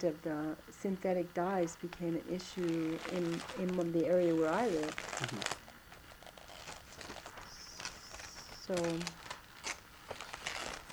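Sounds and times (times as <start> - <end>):
speech: 0.0 - 5.6, 8.7 - 9.2
faint hum: 0.0 - 10.9
book pages turning: 2.6 - 10.9.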